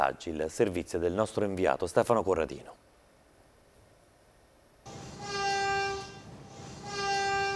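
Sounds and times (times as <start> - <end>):
speech: 0.0 - 2.8
train whistle blasts at a station: 4.9 - 7.5.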